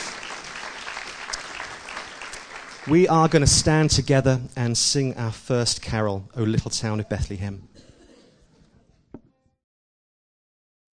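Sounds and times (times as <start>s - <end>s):
audience applause at a church Christmas carol service: 0.0s - 3.9s
speech: 2.8s - 7.9s.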